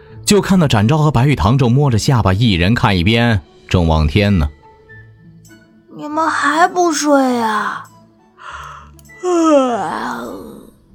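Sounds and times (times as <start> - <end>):
speech: 0.3 - 4.6, 6.0 - 7.9, 9.2 - 10.5
performed yawn in an audio drama: 8.4 - 10.8.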